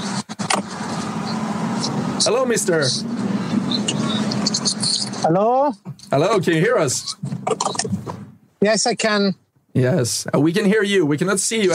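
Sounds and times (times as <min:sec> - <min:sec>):
car engine and road noise while driving: 0:00.0 - 0:08.4
speech: 0:01.9 - 0:04.0, 0:04.6 - 0:07.3, 0:08.6 - 0:11.7.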